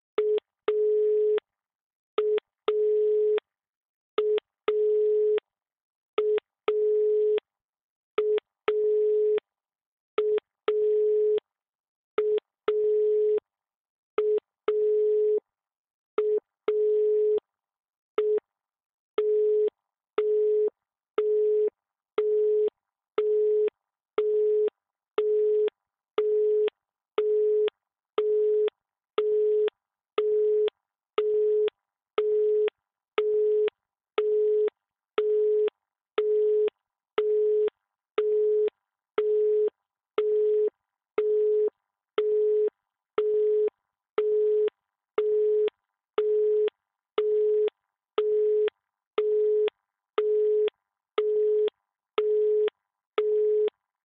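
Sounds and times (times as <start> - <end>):
phone dial tone: 0.2 - 1.4, 2.2 - 3.4, 4.2 - 5.4, 6.2 - 7.4, 8.2 - 9.4, 10.2 - 11.4, 12.2 - 13.4, 14.2 - 15.4, 16.2 - 17.4, 19.2 - 53.7.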